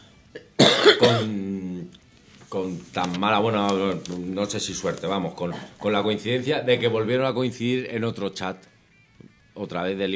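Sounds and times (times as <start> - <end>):
cough into the microphone: 0.4 - 1.5, 5.4 - 5.8
speech: 1.0 - 1.6, 2.5 - 8.7, 9.6 - 10.1.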